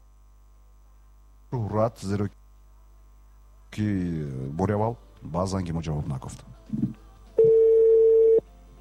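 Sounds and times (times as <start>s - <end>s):
faint hum: 0.0s - 8.7s
speech: 1.6s - 2.4s, 3.7s - 7.0s
ringback tone of an outgoing telephone call: 7.4s - 8.4s.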